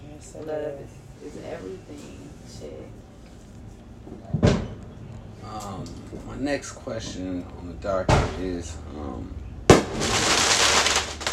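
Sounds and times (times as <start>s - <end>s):
speech: 0.4s - 3.0s, 5.4s - 10.2s
fireworks banging: 9.7s - 11.3s.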